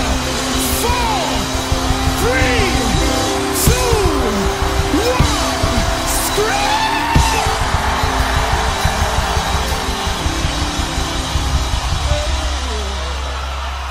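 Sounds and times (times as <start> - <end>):
large crowd shouting and cheering: 0.0 - 13.8
person whooping: 2.0 - 10.6.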